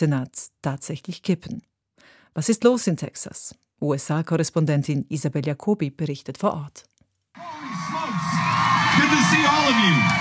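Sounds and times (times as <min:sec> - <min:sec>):
speech: 0:00.0 - 0:01.7, 0:02.3 - 0:07.7, 0:09.0 - 0:10.1
large crowd cheering at a campaign rally: 0:07.4 - 0:10.1
scattered shouts: 0:07.4 - 0:10.1.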